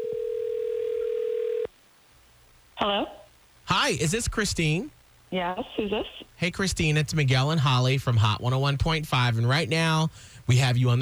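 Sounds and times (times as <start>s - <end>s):
telephone dial tone: 0.0s - 1.7s
speech: 2.8s - 11.0s.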